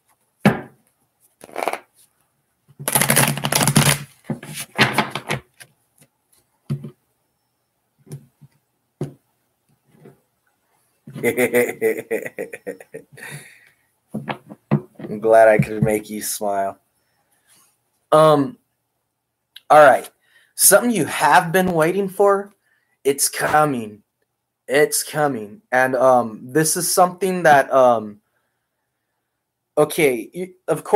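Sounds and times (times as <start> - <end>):
tarot cards being shuffled: 1.3 - 2.1, 2.8 - 5.7
laughter: 11.2 - 13.4
speech: 11.2 - 13.6, 15.1 - 16.8, 18.1 - 18.6, 19.7 - 24.0, 24.7 - 28.2, 29.8 - 30.9.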